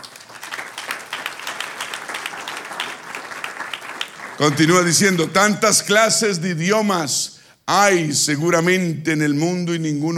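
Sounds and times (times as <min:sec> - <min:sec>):
crowd applauding during a sermon: 0:00.0 - 0:05.5
speech: 0:04.4 - 0:10.1.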